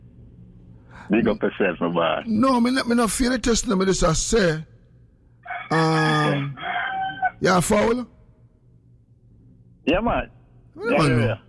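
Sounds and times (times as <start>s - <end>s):
speech: 1.1s - 4.7s, 5.7s - 6.5s, 7.4s - 8.1s, 9.8s - 11.4s
rooster crowing: 5.4s - 7.5s.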